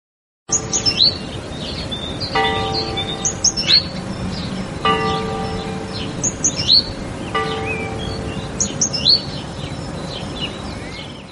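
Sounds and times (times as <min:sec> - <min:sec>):
small birds chirping and twittering: 0:00.5 - 0:11.3
church bell tolling: 0:02.4 - 0:09.6.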